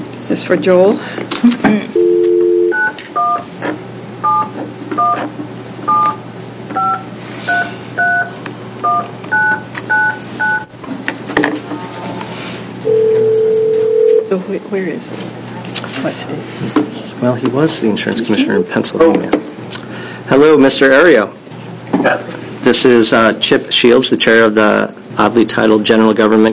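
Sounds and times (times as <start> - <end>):
low steady hum: 0.0 - 3.4, 4.2 - 15.6
speech: 0.3 - 2.1, 14.5 - 15.4, 16.0 - 21.4, 22.0 - 26.5
telephone keypad tones as a number is dialed: 2.0 - 3.4, 5.9 - 6.2, 6.8 - 7.0, 7.6 - 10.7.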